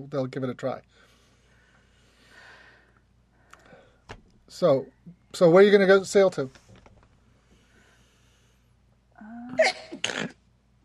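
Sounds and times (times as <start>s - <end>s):
speech: 0.0s - 1.1s, 4.1s - 6.6s, 9.2s - 10.4s
person sneezing: 9.6s - 10.4s.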